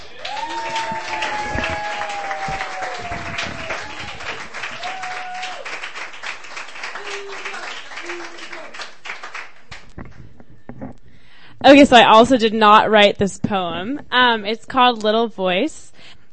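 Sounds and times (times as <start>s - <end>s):
voices and whoops: 0.0s - 5.8s, 6.9s - 8.8s
audience clapping: 0.0s - 10.3s
speech: 11.7s - 16.3s.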